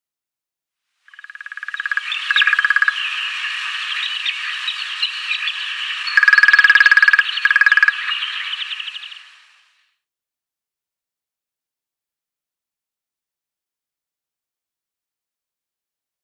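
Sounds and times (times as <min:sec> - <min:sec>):
Middle Spotted Woodpecker drumming: 0:01.1 - 0:09.3.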